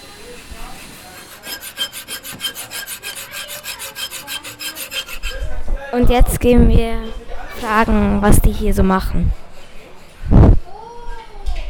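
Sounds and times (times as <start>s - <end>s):
hand sawing in a physics workshop: 0.0s - 5.7s
speech: 5.9s - 9.4s.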